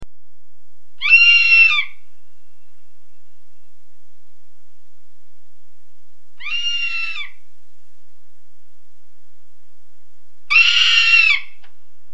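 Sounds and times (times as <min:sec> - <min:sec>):
ferruginous hawk calling: 0:01.0 - 0:02.0, 0:06.4 - 0:07.4, 0:10.5 - 0:11.6.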